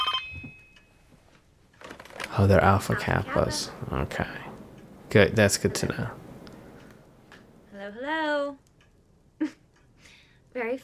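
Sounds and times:
telephone ringing: 0:00.0 - 0:00.8
speech: 0:02.4 - 0:04.5, 0:05.1 - 0:06.2.

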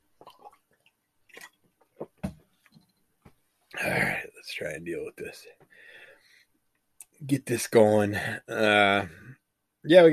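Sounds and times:
person sipping a drink: 0:00.2 - 0:00.6
speech: 0:03.8 - 0:05.6, 0:07.2 - 0:10.1.

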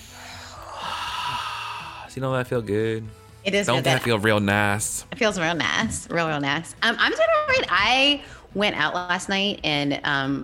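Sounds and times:
deep breath drawn in: 0:00.0 - 0:02.1
speech: 0:02.1 - 0:10.4.

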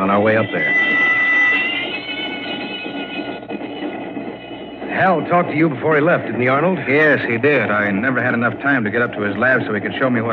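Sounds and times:
speech: 0:00.0 - 0:01.0, 0:05.0 - 0:10.3
high metallic squeals of train on rails: 0:00.0 - 0:06.7
train rumbling on rails: 0:00.0 - 0:10.3.

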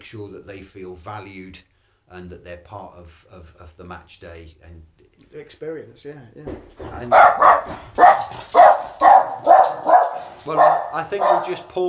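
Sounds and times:
speech: 0:00.0 - 0:08.3, 0:10.4 - 0:11.8
dog barking at someone at the door: 0:06.9 - 0:11.8.

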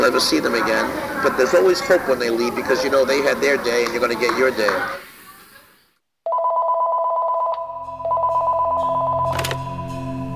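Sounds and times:
speech: 0:00.0 - 0:05.0
telephone ringing in buzzing bursts: 0:06.3 - 0:09.9.

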